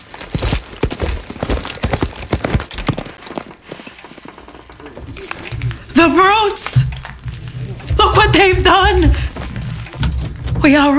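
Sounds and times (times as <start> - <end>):
horse hooves galloping as a rider sets off: 0.0 - 10.9
speech: 6.0 - 6.7, 10.6 - 10.9.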